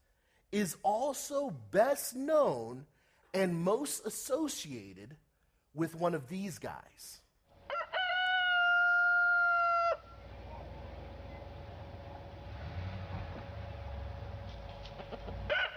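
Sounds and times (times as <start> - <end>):
speech: 0.5 - 5.2, 5.8 - 7.2
rooster crowing: 7.7 - 10.2, 15.5 - 15.7
low rumble: 10.0 - 15.5.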